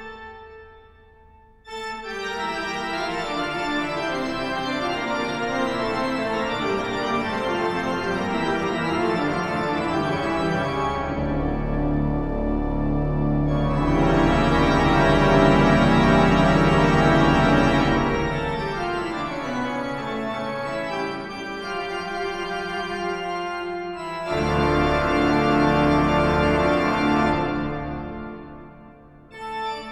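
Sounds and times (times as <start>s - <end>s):
classical fugue: 1.7s - 29.9s.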